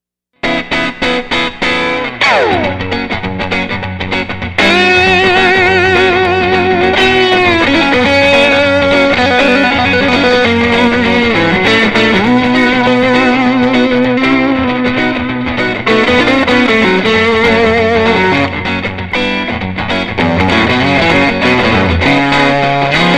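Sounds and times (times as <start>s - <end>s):
Strat electric guitar rhythm part: 0.4s - 23.1s.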